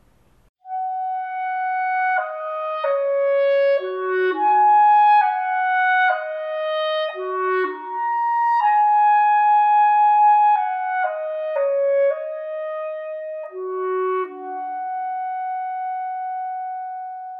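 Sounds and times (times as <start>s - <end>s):
solo clarinet playing a flowing melody: 0.6s - 17.3s.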